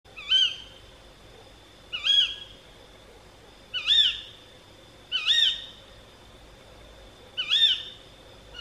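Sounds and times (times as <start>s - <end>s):
female tawny owl calling: 0.1s - 0.9s, 1.9s - 4.4s, 5.1s - 5.9s, 7.2s - 8.5s.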